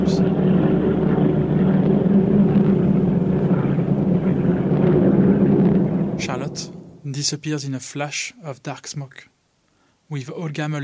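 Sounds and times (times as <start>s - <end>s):
American bomber aircraft flying overhead with heavy engine drone: 0.0s - 7.1s
speech: 7.2s - 9.4s, 10.1s - 10.8s.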